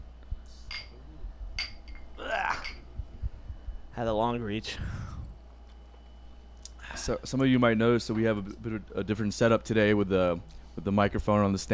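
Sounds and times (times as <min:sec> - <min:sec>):
low rumble: 0:00.0 - 0:06.9
glasses clinking: 0:00.7 - 0:01.0, 0:01.6 - 0:02.9
speech: 0:04.0 - 0:05.1, 0:07.1 - 0:11.7.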